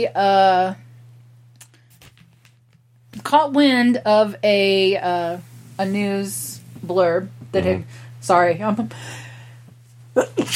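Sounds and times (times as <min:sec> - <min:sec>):
speech: 0:00.0 - 0:00.9, 0:03.1 - 0:09.2, 0:10.2 - 0:10.5
steady low electrical hum: 0:00.0 - 0:10.5
person sneezing: 0:10.2 - 0:10.5.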